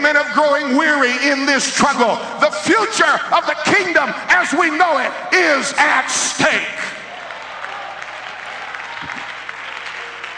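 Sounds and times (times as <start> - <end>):
speech: 0.1 - 7.0
applause from a congregation: 6.8 - 10.3.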